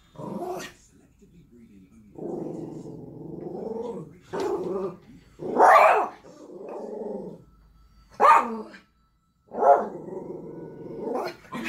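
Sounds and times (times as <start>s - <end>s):
Spitz dog growling: 0.2s - 0.8s, 2.1s - 7.4s, 9.6s - 11.6s
Spitz dog barking sharply: 5.5s - 6.2s, 8.2s - 8.8s, 9.6s - 10.0s.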